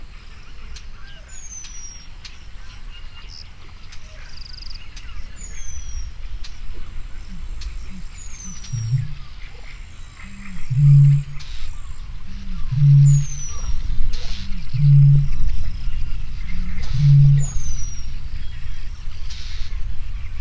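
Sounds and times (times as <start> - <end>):
Eurasian bittern booming with soft grunts and deep hollow booms: 10.5 - 20.3.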